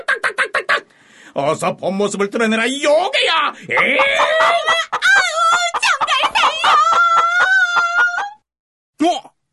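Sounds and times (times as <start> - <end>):
speech: 1.4 - 6.8, 9.0 - 9.3
rooster crowing: 3.8 - 8.4.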